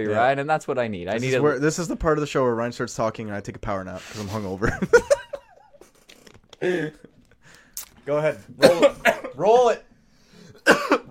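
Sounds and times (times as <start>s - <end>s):
speech: 0.0s - 5.2s, 6.6s - 7.1s, 8.0s - 9.9s
quick coughs: 8.6s - 9.4s, 10.6s - 11.0s.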